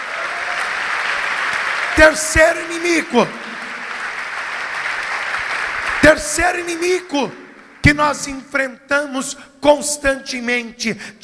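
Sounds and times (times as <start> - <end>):
crowd applauding in a big room: 0.0 - 8.0
speech: 2.0 - 3.5, 6.3 - 11.2.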